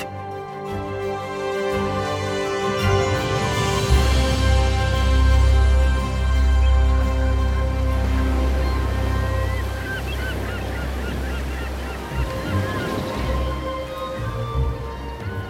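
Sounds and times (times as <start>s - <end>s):
seabirds honking and calling above the water: 0.0s - 15.4s
waves breaking against a ship's bow at sunrise on a fine morning: 7.7s - 15.4s.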